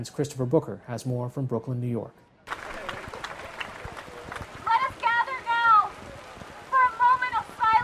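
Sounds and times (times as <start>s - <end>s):
speech: 0.0s - 2.3s
heavy early-evening rain outdoors in Brooklyn New York: 2.5s - 7.8s.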